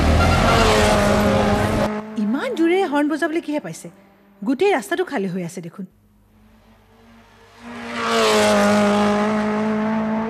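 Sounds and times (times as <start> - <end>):
car engine roaring as it drives off fast on an empty road: 0.0 - 2.3, 6.1 - 10.2
speech: 2.5 - 6.0.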